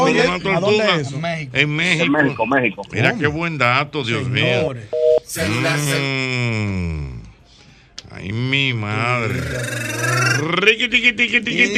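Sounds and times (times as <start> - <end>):
speech: 0.1 - 7.1, 8.1 - 11.7
loud electronic cell phone beep: 2.0 - 3.0, 4.4 - 5.6.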